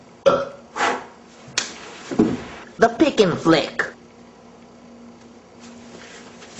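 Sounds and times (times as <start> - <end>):
person burping: 0.2 - 0.6
speech: 2.8 - 3.9.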